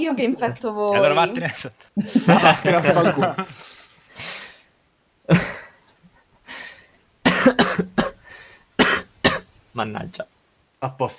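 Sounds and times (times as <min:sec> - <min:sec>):
speech: 0:00.0 - 0:04.4, 0:05.3 - 0:05.6, 0:09.8 - 0:11.1
laughter: 0:02.0 - 0:03.7
person coughing: 0:02.1 - 0:03.2, 0:05.3 - 0:05.8, 0:07.3 - 0:09.4.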